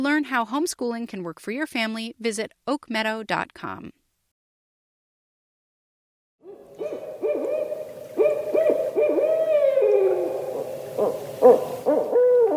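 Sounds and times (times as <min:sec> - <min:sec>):
speech: 0:00.0 - 0:04.0
barred owl hooting with cackling and wavering cries: 0:06.4 - 0:12.5.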